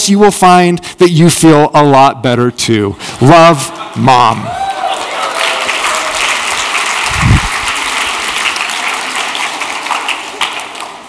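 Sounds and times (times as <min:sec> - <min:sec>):
speech: 0:00.0 - 0:04.6
crowd applauding with many hands clapping: 0:03.7 - 0:11.0.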